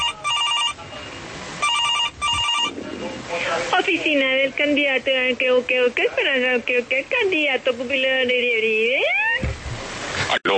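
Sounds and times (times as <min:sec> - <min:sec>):
telephone ringing with an incoming call at an office: 0:00.0 - 0:00.8, 0:01.6 - 0:02.8
low murmur: 0:00.0 - 0:09.1
speech: 0:03.9 - 0:09.2, 0:10.4 - 0:10.5.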